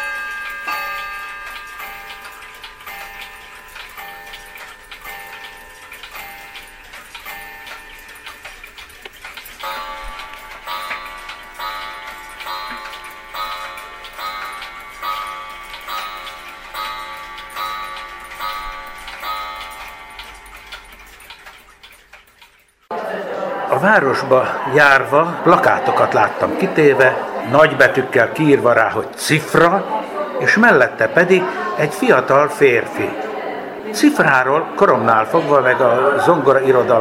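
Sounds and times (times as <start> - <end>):
clock ticking with crisp metallic beats: 0.0 - 22.9
laughter: 22.9 - 28.1
speech: 23.8 - 33.2, 34.0 - 36.9.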